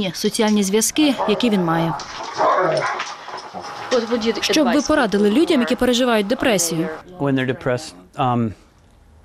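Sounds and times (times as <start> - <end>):
speech: 0.0 - 8.6
malamute dog barking and yelping: 1.1 - 3.0.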